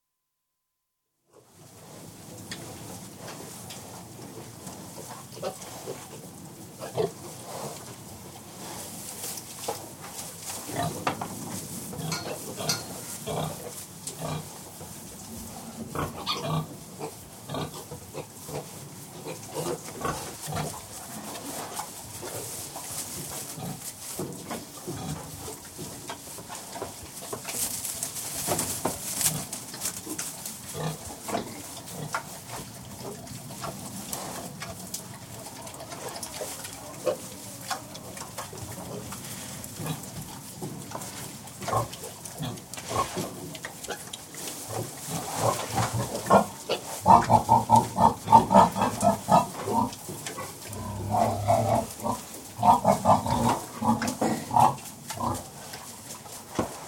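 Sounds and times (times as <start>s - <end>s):
pigs snorting in farrowing pens: 2.7s - 56.8s
pigs grunting in farrowing pens: 11.9s - 14.6s, 15.4s - 22.6s, 29.2s - 40.4s, 41.0s - 44.1s, 44.8s - 55.6s
pigs squealing in farrowing pens: 16.0s - 16.6s, 46.2s - 50.0s.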